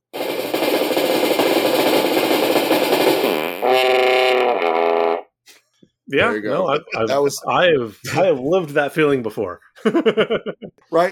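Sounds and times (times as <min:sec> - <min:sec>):
comedic brain-fart sound effect raspy buzzing rattle and warble: 0:00.0 - 0:05.2
speech: 0:06.1 - 0:11.1
laughter: 0:06.2 - 0:07.4, 0:09.8 - 0:10.8.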